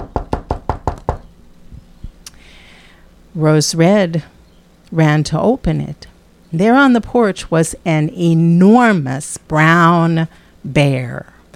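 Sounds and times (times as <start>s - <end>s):
loud solid knocks on a wooden door: 0.0s - 1.3s
speech: 3.4s - 11.5s.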